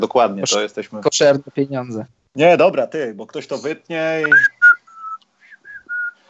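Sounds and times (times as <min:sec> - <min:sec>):
speech: 0:00.0 - 0:04.6
person whistling a short tune: 0:04.2 - 0:06.2.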